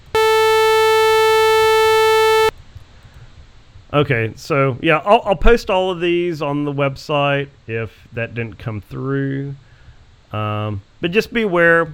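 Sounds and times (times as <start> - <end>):
loud steady sawtooth wave test tone: 0.0 - 2.5
speech: 3.9 - 9.6, 10.3 - 11.9.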